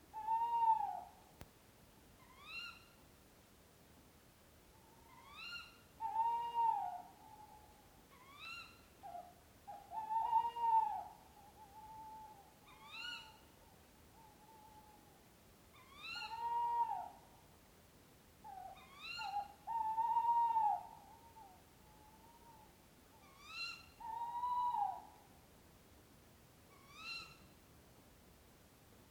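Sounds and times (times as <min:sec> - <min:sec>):
quiet background hiss: 0:00.0 - 0:29.0
owl hooting: 0:00.1 - 0:01.2, 0:02.2 - 0:03.0, 0:04.7 - 0:15.1, 0:15.7 - 0:17.3, 0:18.4 - 0:25.3, 0:26.7 - 0:27.6.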